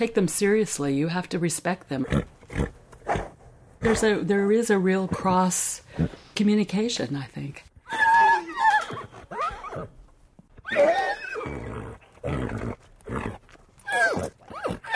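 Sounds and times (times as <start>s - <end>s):
speech: 0.0s - 3.2s, 3.8s - 7.7s, 10.7s - 11.6s
stallion whinnying and snorting: 7.9s - 10.0s, 10.6s - 14.9s.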